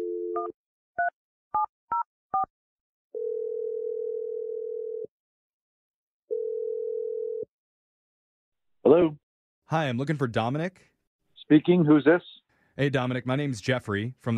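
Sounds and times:
telephone dial tone: 0:00.0 - 0:00.5, 0:03.2 - 0:05.1, 0:06.3 - 0:07.5
speech: 0:00.4 - 0:00.7, 0:08.9 - 0:10.9, 0:11.5 - 0:14.3
long steady telephone ringing tones on the line: 0:03.2 - 0:05.1, 0:06.3 - 0:07.5.

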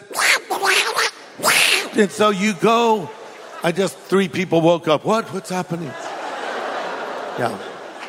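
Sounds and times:
person imitating a cartoon duck's raspy quacking voice: 0:00.0 - 0:02.0
laughter: 0:01.9 - 0:04.5, 0:05.2 - 0:08.0
speech: 0:02.0 - 0:06.0, 0:07.4 - 0:07.7.

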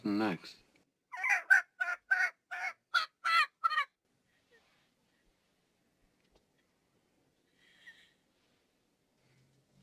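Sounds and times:
speech: 0:00.0 - 0:00.6
chicken squawking loudly in harsh calls: 0:01.1 - 0:03.9.

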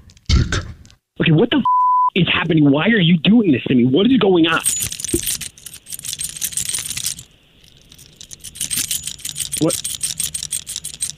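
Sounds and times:
speech: 0:01.3 - 0:05.4, 0:09.6 - 0:09.9
metal keys jingling: 0:04.5 - 0:11.1.

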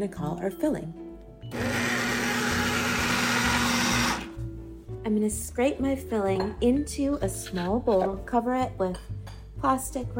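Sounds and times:
speech: 0:00.0 - 0:01.8, 0:05.0 - 0:10.1
food processor running on low mixing butter into a thick filling: 0:01.5 - 0:04.4.

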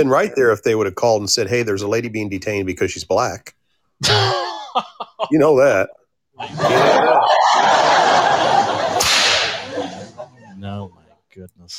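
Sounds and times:
speech: 0:00.0 - 0:08.0, 0:11.4 - 0:11.7
audience laughter: 0:06.4 - 0:10.6
whip crack sound effect from soundboard: 0:08.9 - 0:09.9.

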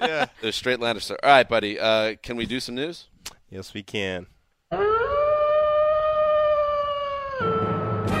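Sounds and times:
speech: 0:00.0 - 0:04.3
wolf howling: 0:04.7 - 0:08.1.

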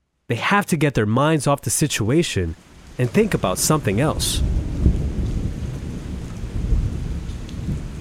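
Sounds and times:
speech: 0:00.3 - 0:04.6
pouring rain: 0:01.0 - 0:07.9
deep continuous thunder rumbling: 0:02.9 - 0:07.9.

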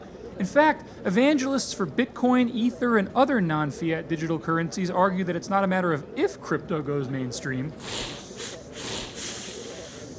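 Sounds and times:
noisy background: 0:00.0 - 0:10.1
speech: 0:00.4 - 0:08.6
cats hissing: 0:07.8 - 0:10.1.

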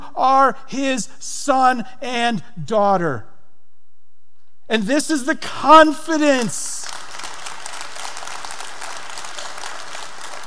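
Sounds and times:
speech: 0:00.2 - 0:03.3, 0:04.7 - 0:07.0
large crowd applauding: 0:06.8 - 0:10.4.

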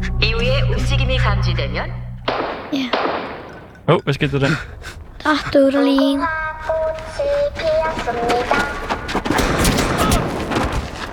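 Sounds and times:
speech: 0:00.2 - 0:09.8
many gunshots fired in a rapid burst: 0:02.3 - 0:03.6, 0:09.3 - 0:10.8.

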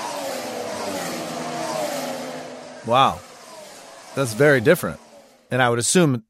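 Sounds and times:
2014 turbo hybrid Formula 1 engine droning at high revs: 0:00.0 - 0:05.8
speech: 0:02.8 - 0:03.3, 0:04.2 - 0:06.2.

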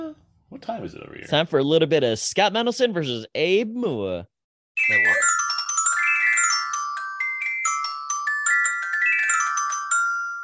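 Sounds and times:
speech: 0:00.6 - 0:05.4
short bright segment theme jingle of chiming bell-like tones and plucked notes: 0:04.8 - 0:10.4.

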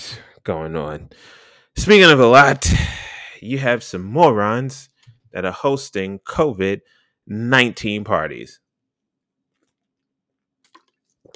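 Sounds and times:
speech: 0:00.1 - 0:08.6
person taking a swig of water and swallowing: 0:02.5 - 0:03.3, 0:10.7 - 0:11.3.

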